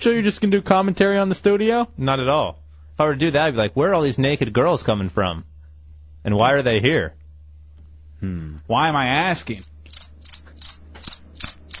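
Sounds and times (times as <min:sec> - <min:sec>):
speech: 0:00.0 - 0:05.5, 0:06.2 - 0:07.2, 0:08.2 - 0:09.7
faint low hum: 0:00.0 - 0:11.7
crickets chirping: 0:09.5 - 0:11.7.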